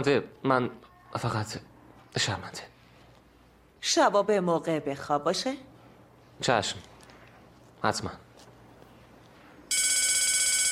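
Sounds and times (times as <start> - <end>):
speech: 0.0 - 2.7, 3.8 - 5.7, 6.4 - 6.9, 7.8 - 8.2
telephone ringing: 9.7 - 10.6.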